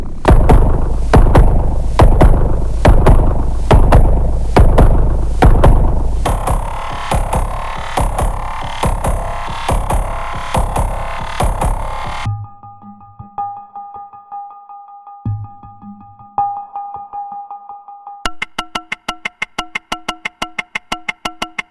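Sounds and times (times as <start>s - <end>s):
tonal percussion: 0.3s - 12.3s, 18.3s - 21.6s.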